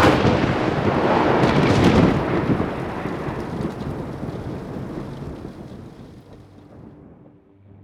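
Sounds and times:
thunder from a lightning strike: 0:00.0 - 0:07.2.

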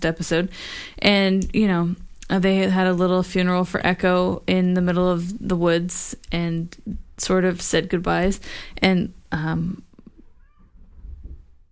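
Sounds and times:
speech: 0:00.0 - 0:09.9
pet cat meowing: 0:10.3 - 0:10.8.

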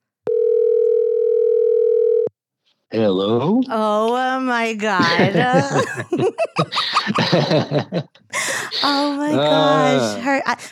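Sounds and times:
telephone dial tone while placing a call: 0:00.2 - 0:02.3
speech: 0:02.9 - 0:10.7
laughter: 0:05.0 - 0:10.6.

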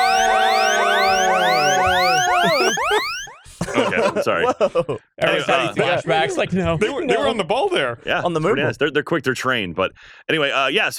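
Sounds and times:
police car siren wailing: 0:00.0 - 0:03.6
laughter: 0:00.6 - 0:07.3
speech: 0:04.2 - 0:10.9.

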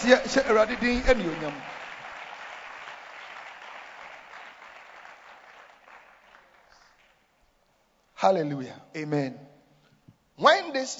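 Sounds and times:
speech: 0:00.0 - 0:01.8, 0:08.2 - 0:09.5, 0:10.4 - 0:10.9
church audience applause as a clap offering: 0:00.0 - 0:07.3.

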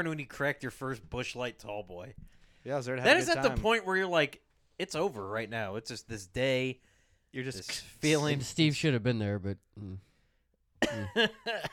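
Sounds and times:
speech: 0:00.0 - 0:10.1, 0:10.8 - 0:11.7
harsh coughs: 0:10.8 - 0:11.7.

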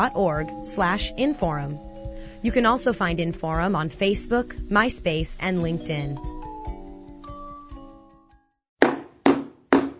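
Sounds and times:
speech: 0:00.0 - 0:06.3
loud knocks on a door: 0:08.8 - 0:09.9.

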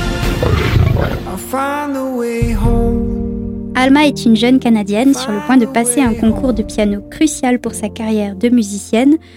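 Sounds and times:
lion roaring: 0:00.2 - 0:01.4
speech: 0:01.5 - 0:03.0, 0:03.7 - 0:09.3.

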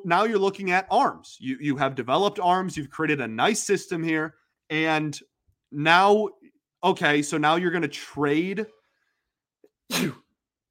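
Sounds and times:
speech: 0:00.0 - 0:08.8, 0:09.9 - 0:10.2
single human sneeze: 0:09.9 - 0:10.4.

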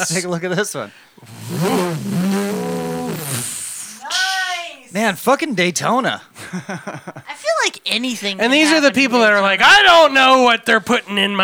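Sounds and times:
speech: 0:00.0 - 0:02.6, 0:04.9 - 0:11.4
motorcycle engine revving jumping a drawbridge: 0:01.2 - 0:03.7
laughter: 0:06.4 - 0:07.4.

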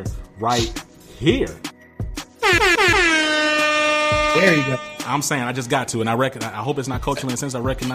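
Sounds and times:
speech: 0:00.0 - 0:01.7, 0:02.4 - 0:03.3, 0:04.4 - 0:07.9
brassy air horn blasts: 0:02.4 - 0:05.3.

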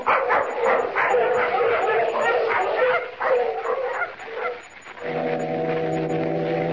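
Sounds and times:
pack of sled dogs barking and yipping: 0:00.0 - 0:05.0
deep steady foghorn blast: 0:05.0 - 0:06.7.

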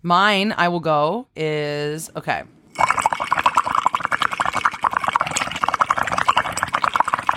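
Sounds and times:
speech: 0:00.0 - 0:03.4
air blown through a straw into water bubbling: 0:02.6 - 0:07.3.

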